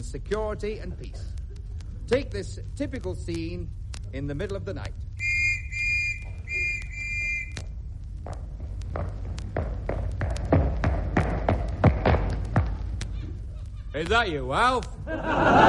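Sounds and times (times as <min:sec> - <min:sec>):
speech: 0:00.0 - 0:01.4, 0:02.1 - 0:05.1, 0:14.0 - 0:15.6
low rumbling background: 0:00.0 - 0:15.6
shrill police whistle blasts at night: 0:05.2 - 0:07.7
hurried footsteps: 0:05.2 - 0:15.1
laughter: 0:15.0 - 0:15.6.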